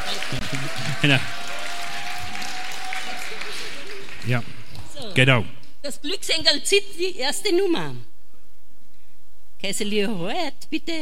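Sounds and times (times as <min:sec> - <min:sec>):
audience applauding: 0:00.0 - 0:05.7
speech: 0:00.3 - 0:01.6, 0:04.2 - 0:04.6, 0:05.2 - 0:08.1, 0:09.6 - 0:11.0.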